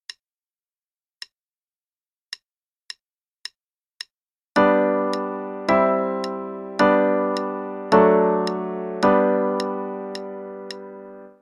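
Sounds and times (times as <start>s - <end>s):
G major chord progression: 4.6s - 11.4s.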